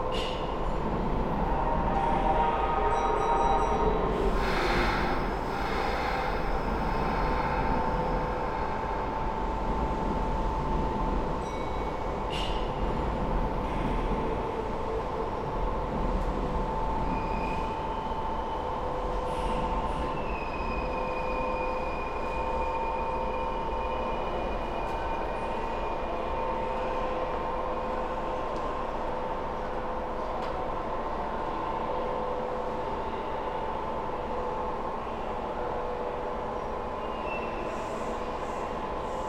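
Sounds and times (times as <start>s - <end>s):
semi-express electric train in Japan rumbling inside: 0.0s - 39.2s.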